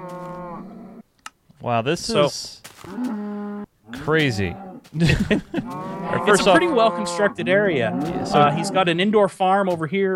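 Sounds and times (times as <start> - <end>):
video game cow mooing: 0.0 - 1.0, 2.9 - 4.8, 5.6 - 9.0
speech: 1.6 - 3.2, 4.0 - 10.1
laughter: 5.0 - 6.8.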